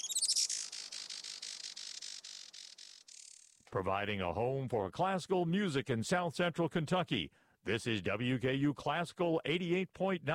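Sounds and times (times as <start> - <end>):
Juan Fernandez firecrown hummingbird chirping: 0.0 - 3.6
speech: 3.7 - 10.3.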